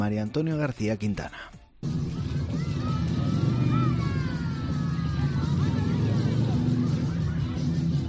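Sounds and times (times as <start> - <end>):
speech: 0.0 - 2.0
several motorcycle engines roaring at a motorcycle rally: 1.8 - 8.0.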